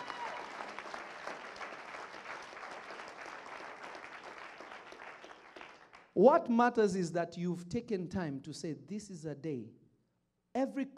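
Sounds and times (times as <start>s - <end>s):
crowd of people clapping: 0.0s - 6.2s
speech: 6.2s - 9.8s, 10.6s - 10.9s.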